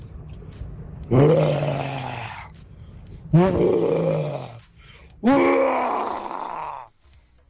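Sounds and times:
person imitating a lion roar for a radio contest: 1.1s - 2.5s, 3.3s - 4.6s, 5.2s - 6.9s.

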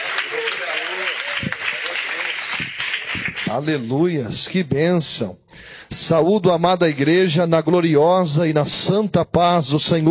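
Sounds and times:
large crowd applauding: 0.0s - 4.0s
speech: 3.5s - 10.0s.

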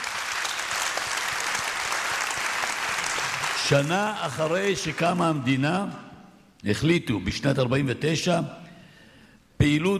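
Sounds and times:
crowd applauding: 0.0s - 5.5s
speech: 3.7s - 6.0s, 6.6s - 8.6s, 9.6s - 9.9s.

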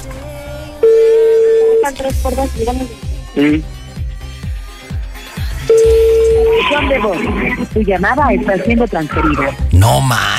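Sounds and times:
music: 0.0s - 10.3s
ringback tone of an outgoing phone call: 0.8s - 1.9s, 5.7s - 6.9s
people talking: 1.8s - 3.6s, 5.8s - 10.3s.

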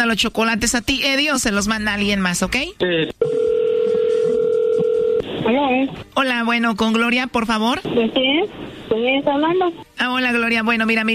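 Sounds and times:
speech: 0.0s - 3.4s, 5.4s - 11.1s
telephone dial tone: 3.2s - 5.2s.

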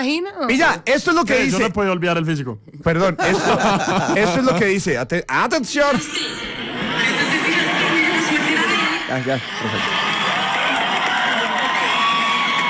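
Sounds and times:
speech: 0.0s - 6.5s, 9.1s - 10.0s
laughter: 3.1s - 4.9s, 5.9s - 12.1s
large crowd shouting and cheering: 6.4s - 12.6s
scattered whoops in a crowd: 10.2s - 12.6s.

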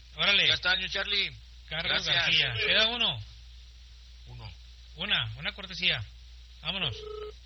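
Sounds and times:
speech: 0.2s - 3.3s, 5.0s - 7.4s
telephone tone while a call is being placed: 6.9s - 7.3s.

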